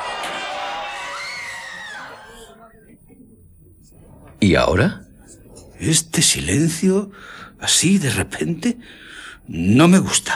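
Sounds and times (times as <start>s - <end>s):
crowds of people screaming and shouting in alarm in a street: 0.0s - 2.7s
speech: 4.1s - 5.0s, 5.8s - 10.3s.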